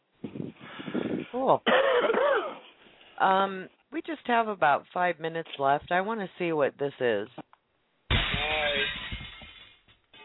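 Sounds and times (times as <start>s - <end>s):
speech: 1.4s - 2.1s, 3.2s - 7.4s
glass breaking with a loud crash: 8.1s - 9.9s.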